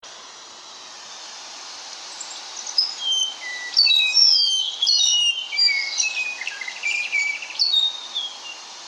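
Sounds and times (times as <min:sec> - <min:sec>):
yellowhead Mohoua ochrocephala calling: 0:02.2 - 0:08.6.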